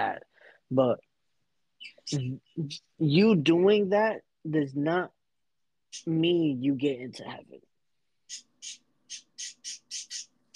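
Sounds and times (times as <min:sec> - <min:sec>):
speech: 0:00.0 - 0:01.1, 0:01.8 - 0:05.2, 0:05.9 - 0:07.7, 0:08.3 - 0:09.8
pet birds squawking loudly: 0:08.3 - 0:10.5.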